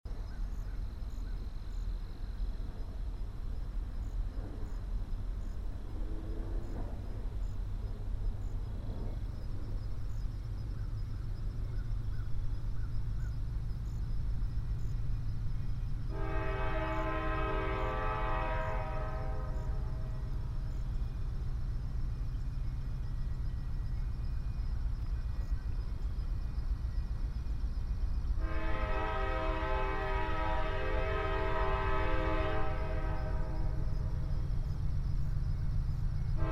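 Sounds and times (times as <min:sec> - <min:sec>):
freight train: 0:00.1 - 0:36.4.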